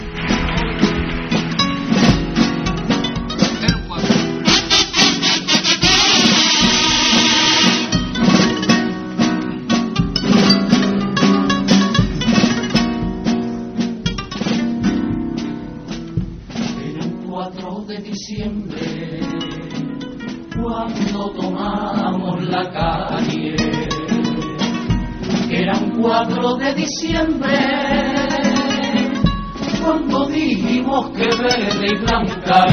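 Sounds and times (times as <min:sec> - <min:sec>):
strummed instruments: 0:00.0 - 0:32.7
choir singing a carnival comparsa copla: 0:04.5 - 0:07.9, 0:16.8 - 0:32.7.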